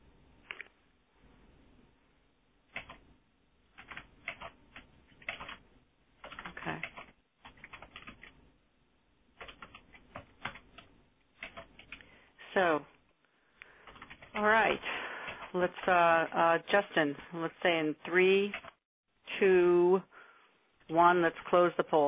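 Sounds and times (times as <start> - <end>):
typing on a computer keyboard: 2.7 - 3.0, 3.7 - 5.6, 6.2 - 8.4, 9.4 - 12.1, 13.8 - 14.4, 18.4 - 18.8
speech: 12.6 - 12.9, 14.4 - 15.0, 15.6 - 18.6, 19.4 - 20.1, 20.9 - 22.0.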